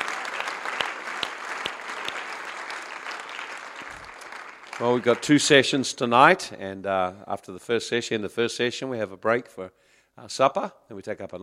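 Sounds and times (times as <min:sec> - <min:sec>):
audience clapping hands in sustained applause: 0:00.0 - 0:06.0
speech: 0:04.8 - 0:11.4.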